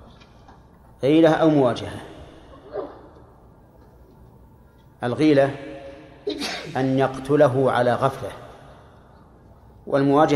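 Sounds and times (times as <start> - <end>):
speech: 1.0 - 2.1, 5.0 - 5.7, 6.3 - 8.4, 9.8 - 10.3
person sneezing: 6.3 - 6.8.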